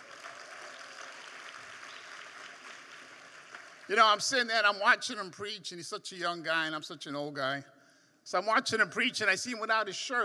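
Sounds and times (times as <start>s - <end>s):
audience clapping: 0.0s - 4.2s
speech: 3.9s - 10.2s.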